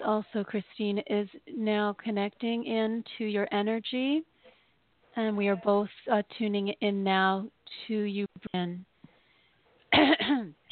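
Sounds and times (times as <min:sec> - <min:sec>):
speech: 0:00.0 - 0:04.3, 0:05.2 - 0:08.9, 0:09.9 - 0:10.6
person clearing throat: 0:09.9 - 0:10.6
person coughing: 0:09.9 - 0:10.6.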